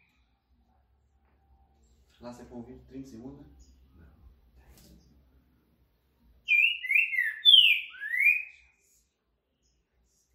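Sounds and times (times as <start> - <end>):
speech: 2.2 - 3.7
caged green-winged saltator whistling a four-note phrase: 6.5 - 8.8.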